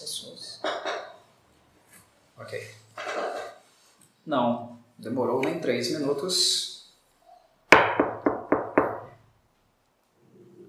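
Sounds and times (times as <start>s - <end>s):
speech: 4.2s - 6.7s
knocking on a wooden carriage door: 7.7s - 9.1s.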